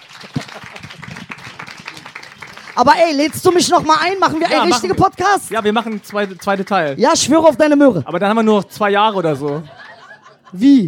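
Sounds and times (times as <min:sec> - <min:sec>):
louder claps: 0:00.0 - 0:07.6, 0:09.1 - 0:10.0
small audience clapping and applauding: 0:00.0 - 0:07.8, 0:08.7 - 0:10.2
laughter: 0:00.2 - 0:01.1, 0:08.7 - 0:10.8
speech: 0:02.8 - 0:09.8, 0:10.5 - 0:10.8.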